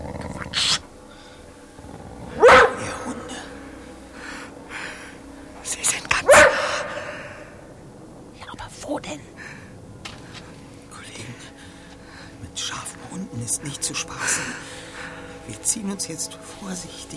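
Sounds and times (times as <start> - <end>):
people whispering: 0.0 - 0.9, 2.4 - 4.4, 5.6 - 7.6, 8.4 - 9.6, 10.8 - 17.1
wolf barks: 1.8 - 3.6, 6.2 - 7.6
speech: 15.9 - 17.1.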